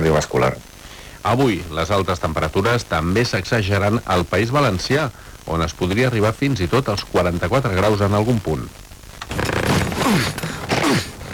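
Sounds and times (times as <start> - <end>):
speech: 0.0 - 9.4, 10.1 - 11.1
suitcase zipper straining as the suitcase is forced shut: 9.2 - 11.3.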